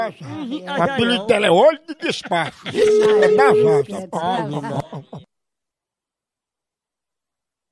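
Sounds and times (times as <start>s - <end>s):
laughter: 0.0s - 5.3s
speech: 0.0s - 5.3s
steady loud buzzy telephone ring tone: 2.8s - 3.7s.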